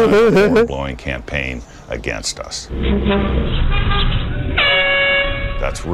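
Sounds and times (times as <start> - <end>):
laughter: 0.0 - 0.8
speech: 0.0 - 3.9, 5.6 - 5.9
road rumble: 2.6 - 5.9
car horns honking from passing traffic: 2.8 - 5.9.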